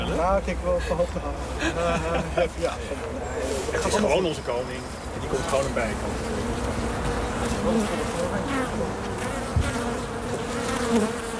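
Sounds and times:
speech: 0.2s - 9.9s, 10.9s - 11.2s
laughter: 0.6s - 4.1s
honeybees buzzing at a beehive: 3.0s - 11.3s.

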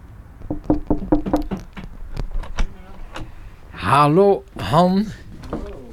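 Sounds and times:
door handle and latch rattling in an artist's studio: 0.4s - 3.4s
door shutting in an artist's studio: 0.4s - 3.6s, 5.3s - 5.9s
speech: 3.9s - 5.2s.

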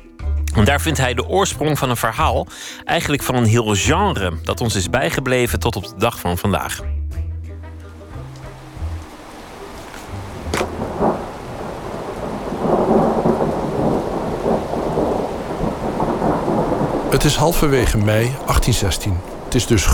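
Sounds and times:
speech: 0.6s - 7.0s, 17.2s - 19.9s
dense steady downpour of heavy rain: 8.2s - 19.9s
deep rolling thunder rumbling: 10.2s - 19.9s.

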